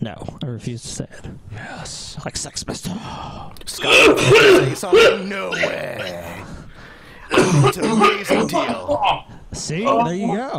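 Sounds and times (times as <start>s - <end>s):
speech: 0.0s - 6.5s, 7.3s - 10.5s
person coughing harshly: 3.8s - 6.4s, 7.3s - 9.2s.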